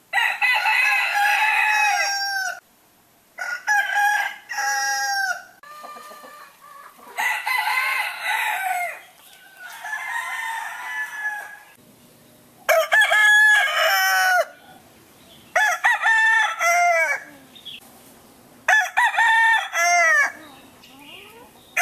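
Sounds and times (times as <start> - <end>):
rooster crowing: 0.1 - 2.6, 3.4 - 11.8, 12.7 - 14.8, 15.5 - 17.3, 18.7 - 20.4.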